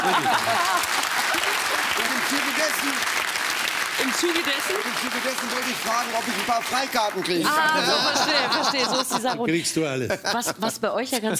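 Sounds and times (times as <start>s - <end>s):
speech: 0.0s - 1.7s, 2.3s - 3.3s, 4.0s - 11.3s
laughter: 0.0s - 2.7s, 7.3s - 11.3s
crowd applauding: 0.0s - 9.2s.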